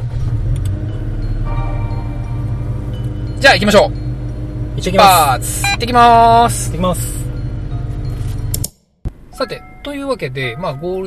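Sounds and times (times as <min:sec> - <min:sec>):
car engine starting and idling: 0:00.0 - 0:11.0
speech: 0:03.4 - 0:04.0, 0:04.8 - 0:07.2, 0:09.4 - 0:11.0.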